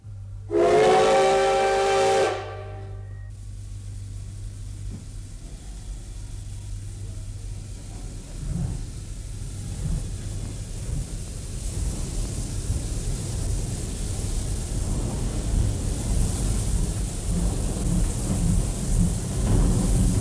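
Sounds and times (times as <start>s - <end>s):
steam locomotive whistle blast: 0.5s - 3.3s
steam locomotive hiss of steam: 0.5s - 20.1s.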